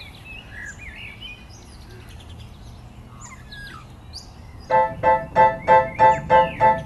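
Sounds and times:
bird repeating a buzzy nasal note at dusk: 4.7 - 6.8.

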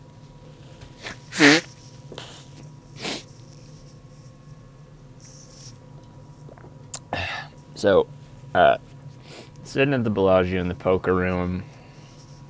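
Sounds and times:
person blowing nose: 1.0 - 3.3
faint sniffles: 1.0 - 3.5, 9.2 - 9.5
speech: 7.8 - 8.8, 9.7 - 11.7.

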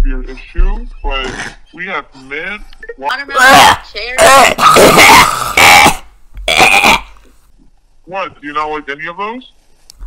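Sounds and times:
speech: 0.1 - 5.4, 8.2 - 9.6
person clearing throat: 4.2 - 7.2.

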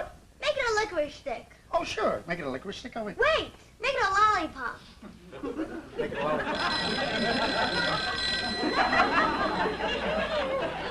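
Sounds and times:
dense noise: 0.0 - 10.8
speech: 0.9 - 10.8
laughter: 5.1 - 10.8
telephone bell ringing: 6.4 - 10.8.

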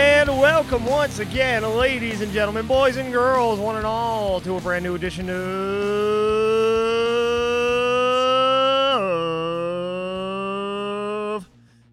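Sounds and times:
voice imitating loud engines of cars driving late at night in Nashville: 0.0 - 11.5
speech: 0.6 - 7.1.

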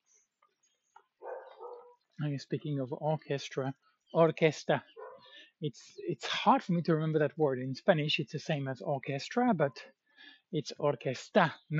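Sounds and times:
small dog barking: 1.2 - 2.0
speech: 2.2 - 5.0, 5.6 - 11.7.

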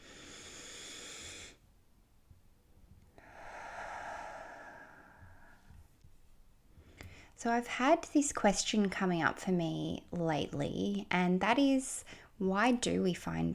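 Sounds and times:
deep mindful breaths: 0.0 - 1.6, 3.1 - 5.9, 6.7 - 7.4, 12.0 - 12.4
speech: 7.4 - 13.5.

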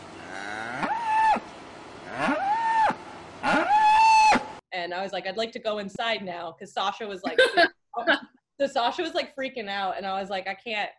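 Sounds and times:
cattle bellowing with scream-like moos: 0.0 - 1.4, 2.1 - 4.4
speech: 4.9 - 10.9.

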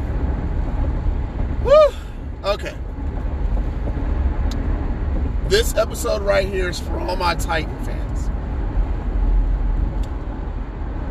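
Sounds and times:
low rumble of a car interior while driving: 0.0 - 11.0
man whooping: 1.6 - 2.6
speech: 2.5 - 2.8, 5.5 - 8.0.

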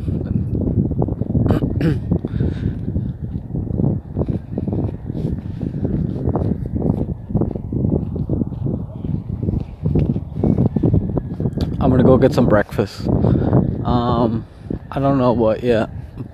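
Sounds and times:
outdoor wind buffeting the microphone: 0.0 - 16.3
speech: 1.8 - 2.6, 11.9 - 16.0.

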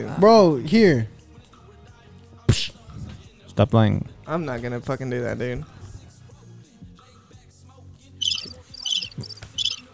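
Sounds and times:
speech: 0.0 - 1.1, 3.6 - 5.8
crickets chirping: 8.2 - 9.9.

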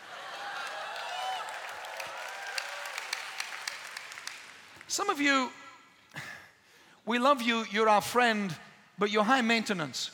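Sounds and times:
room full of people applauding: 0.0 - 5.0
speech: 4.9 - 6.3, 7.1 - 10.1.

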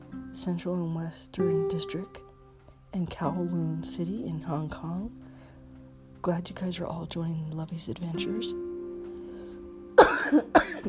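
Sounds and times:
speech: 0.4 - 2.3, 2.9 - 5.2, 6.2 - 8.6
person coughing: 10.0 - 10.8.

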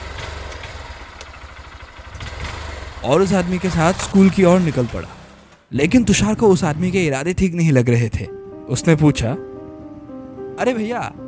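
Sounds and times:
motorcycle engine rumbling: 0.0 - 7.6
speech: 3.0 - 9.5, 10.6 - 11.2.

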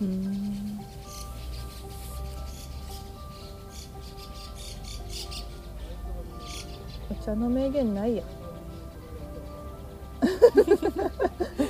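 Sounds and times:
birds chirping outdoors during a picnic: 0.0 - 11.6
speech: 7.2 - 8.4
laughter: 10.0 - 11.6.

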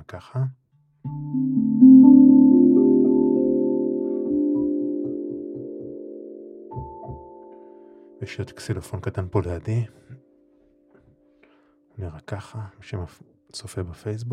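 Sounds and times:
speech: 0.1 - 2.3, 8.2 - 10.0, 12.0 - 14.3
tongue drum struck to accompany a meditation: 1.0 - 11.6.

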